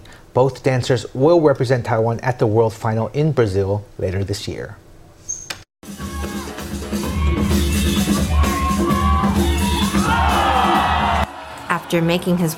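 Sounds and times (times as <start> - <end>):
speech: 0.4 - 4.8, 11.9 - 12.5
large crowd roaring and cheering at a dance battle final: 5.8 - 12.5
shouts and whoops from a dance battle crowd: 6.0 - 12.5.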